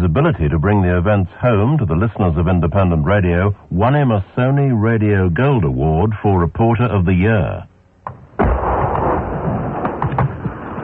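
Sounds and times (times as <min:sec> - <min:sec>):
speech: 0:00.2 - 0:07.7
heavy incoming artillery blast from Argentine batteries around Stanley in the Falklands conflict: 0:08.2 - 0:10.8.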